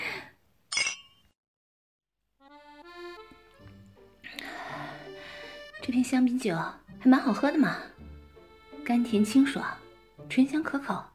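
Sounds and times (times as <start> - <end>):
glasses clinking together in a toast: 0.7 - 1.3
speech: 5.8 - 7.9, 8.8 - 11.1.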